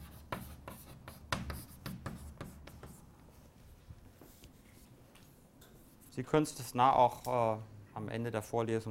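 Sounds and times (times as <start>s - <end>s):
writing on a board during a lecture: 0.0s - 3.1s
speech: 6.2s - 8.8s.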